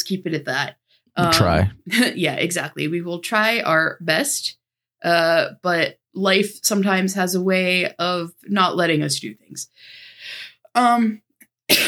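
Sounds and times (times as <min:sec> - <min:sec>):
speech: 0:00.1 - 0:11.8
person coughing: 0:01.2 - 0:01.7.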